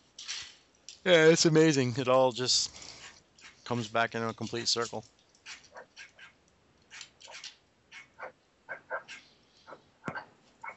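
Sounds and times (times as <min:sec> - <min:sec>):
speech: 0:01.0 - 0:02.9, 0:03.7 - 0:05.2
dog barking: 0:05.7 - 0:06.4, 0:07.3 - 0:10.7.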